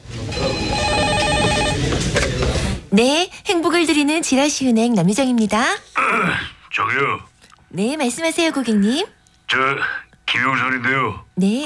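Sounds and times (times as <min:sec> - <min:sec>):
telephone ringing at a desk in a bank office with a trilling electronic ring: 0:00.1 - 0:02.8
speech: 0:02.9 - 0:11.6.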